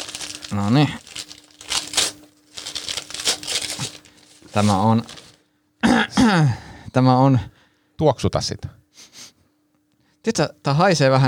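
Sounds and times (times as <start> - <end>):
crinkly bath bomb packaging torn and crumpled open: 0.0 - 5.4
speech: 0.5 - 1.1, 4.6 - 5.2, 6.1 - 8.8, 10.2 - 11.2.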